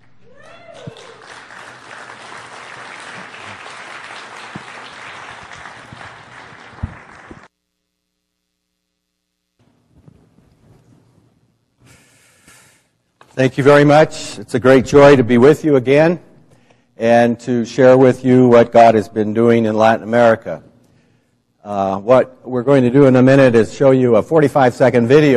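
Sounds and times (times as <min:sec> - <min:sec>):
audience applause welcoming a guest speaker: 0:00.4 - 0:07.5
speech: 0:13.4 - 0:16.3, 0:17.0 - 0:20.7, 0:21.7 - 0:25.3.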